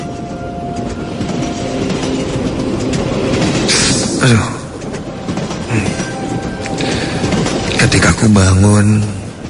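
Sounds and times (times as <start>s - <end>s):
rail clatter: 0.0s - 9.4s
train slowing down on its tracks: 0.0s - 9.4s
speech: 4.2s - 4.6s, 8.2s - 9.2s.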